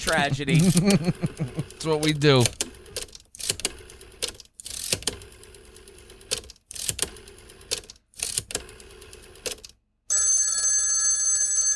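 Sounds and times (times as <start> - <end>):
laughter: 0.0 - 2.1
speech: 0.0 - 2.6
old-style telephone bell ringing: 10.1 - 11.7.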